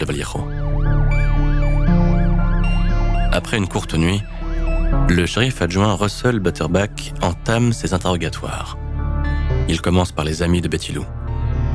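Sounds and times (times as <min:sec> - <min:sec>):
speech: 0:00.0 - 0:01.0, 0:03.4 - 0:04.3, 0:04.9 - 0:08.8, 0:09.6 - 0:11.2
ambulance siren wailing: 0:00.0 - 0:04.9.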